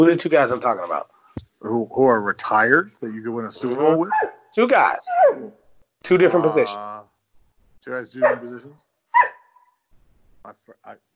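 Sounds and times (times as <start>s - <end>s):
speech: 0.0s - 7.0s, 7.8s - 9.3s, 10.4s - 11.1s
dog barking: 4.1s - 4.5s, 5.1s - 5.6s, 8.2s - 9.8s.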